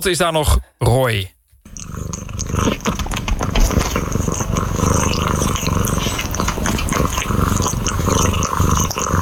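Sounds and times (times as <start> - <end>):
speech: 0.0 - 1.4, 2.5 - 3.2
cat purring while grooming itself: 1.6 - 9.2
cat licking and rustling from grooming: 2.7 - 7.2.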